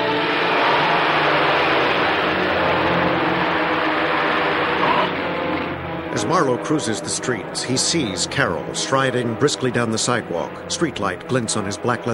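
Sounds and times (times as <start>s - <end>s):
broad rushing noise: 0.0s - 6.2s
car engine roaring as the car speeds away: 0.0s - 12.1s
speech: 6.3s - 12.1s.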